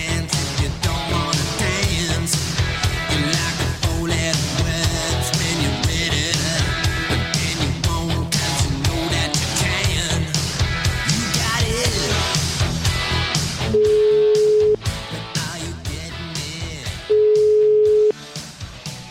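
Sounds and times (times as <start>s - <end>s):
loud music: 0.0s - 17.5s, 18.1s - 19.0s
telephone ringing tone while a call is placed: 13.8s - 14.8s, 17.1s - 18.1s.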